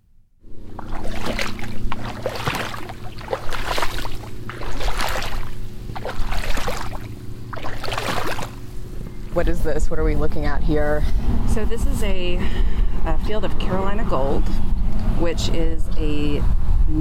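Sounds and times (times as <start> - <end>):
footsteps splashing through shallow rice paddy water: 0.7 - 8.7
speech: 9.4 - 16.9.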